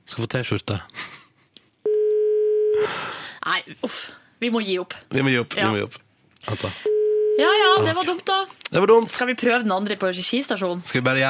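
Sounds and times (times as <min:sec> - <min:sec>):
speech: 0:00.2 - 0:01.0, 0:03.4 - 0:11.2
telephone ringback tone from a call to a payphone at Skøyen station: 0:01.9 - 0:02.8, 0:06.9 - 0:07.8.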